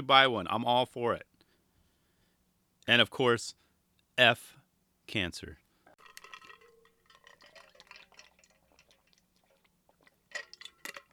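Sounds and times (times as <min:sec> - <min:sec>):
speech: 0:00.0 - 0:01.3, 0:02.9 - 0:03.6, 0:04.2 - 0:05.6
person drinking water: 0:06.0 - 0:11.1.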